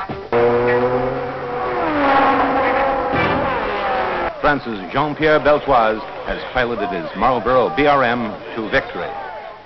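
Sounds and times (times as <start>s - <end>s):
Formula One race car engines revving: 0.3s - 6.2s
Formula One race cars roaring past in the rain on a wet oily circuit: 0.3s - 6.2s
speech: 4.5s - 9.2s.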